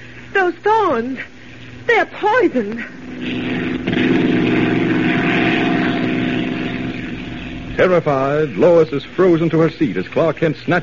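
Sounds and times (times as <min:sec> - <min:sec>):
speech: 0:00.4 - 0:04.1, 0:07.8 - 0:10.8
propeller airplane engine drone in cabin: 0:02.8 - 0:09.3.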